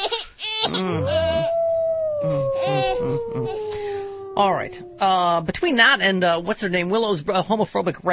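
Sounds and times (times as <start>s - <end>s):
yips or rough vocal bursts: 0.7s - 5.4s
speech: 0.8s - 1.2s, 4.4s - 8.1s
wolf howling: 0.8s - 5.9s.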